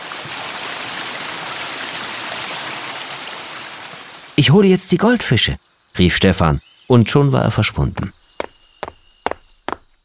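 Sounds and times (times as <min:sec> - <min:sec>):
garden hose spraying water into a pond: 0:00.0 - 0:04.2
speech: 0:04.4 - 0:08.2.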